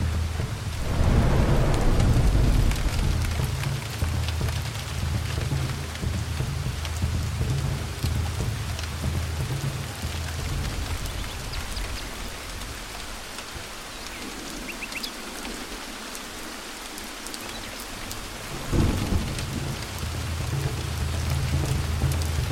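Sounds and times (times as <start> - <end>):
rain in a jungle: 0.0 - 22.5.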